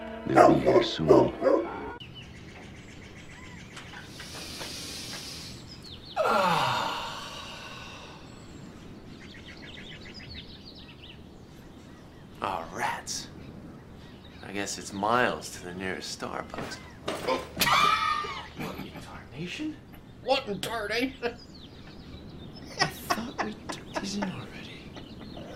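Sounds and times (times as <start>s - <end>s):
speech: 0.3s - 1.5s, 14.8s - 16.9s, 19.4s - 21.5s
dogs barking: 0.3s - 2.0s
breathy vocal sounds: 4.0s - 8.6s
laughter: 17.3s - 19.2s, 22.6s - 24.7s.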